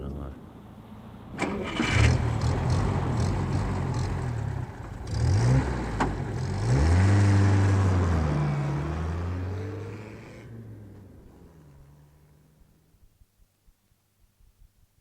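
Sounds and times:
car engine cranking, revving and driving away: 1.2s - 12.9s.

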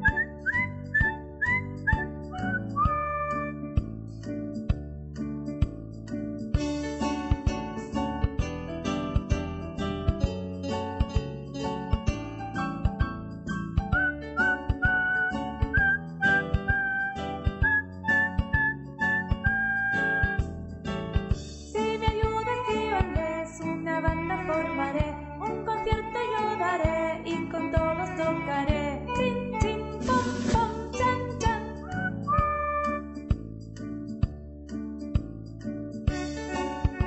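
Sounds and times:
person whistling a tune: 0.0s - 3.7s, 13.5s - 20.5s, 31.7s - 33.2s
rhythmic instrumental backing: 0.0s - 37.0s.

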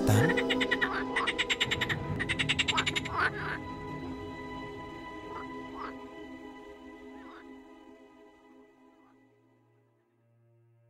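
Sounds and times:
many frogs croaking loudly in a village at night: 0.1s - 3.7s, 5.2s - 6.2s, 7.1s - 7.6s.

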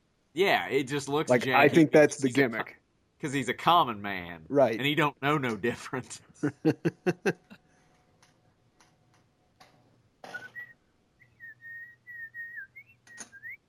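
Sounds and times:
speech: 0.4s - 7.6s
laughter: 6.4s - 7.6s
person whistling a short wavering tune: 10.4s - 13.6s
sharp clicks: 13.0s - 13.5s.

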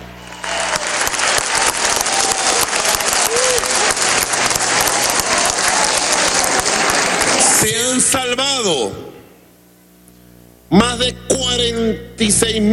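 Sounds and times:
crowd applauding clinical laboratory analysts: 0.0s - 7.9s
speech: 8.1s - 9.2s, 10.7s - 12.7s.

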